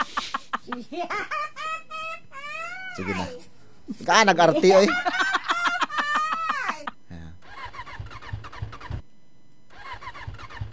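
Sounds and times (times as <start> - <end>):
laughter: 0.0 - 8.2
speech: 0.7 - 1.6, 3.0 - 5.2
motorcycle engine cranked and sputtering: 7.4 - 9.1, 9.7 - 10.7.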